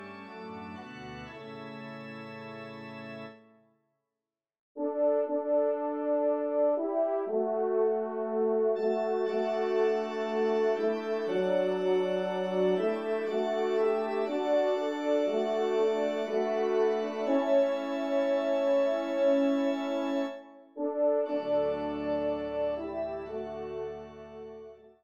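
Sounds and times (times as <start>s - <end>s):
organ: 0.0s - 3.5s, 8.8s - 20.4s, 21.2s - 24.8s
trumpet: 4.8s - 24.9s.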